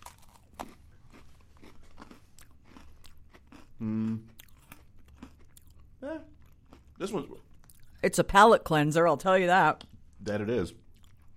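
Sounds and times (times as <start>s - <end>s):
chewing a deep-fried Oreo cookie: 0.0s - 8.0s, 10.8s - 11.3s
person humming: 3.8s - 4.3s
speech: 3.8s - 4.3s, 7.0s - 7.4s, 8.0s - 10.8s.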